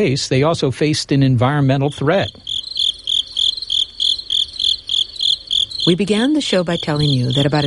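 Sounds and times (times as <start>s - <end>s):
speech: 0.0s - 2.5s, 5.8s - 7.6s
male crickets chirping in Hawaii: 1.6s - 7.6s.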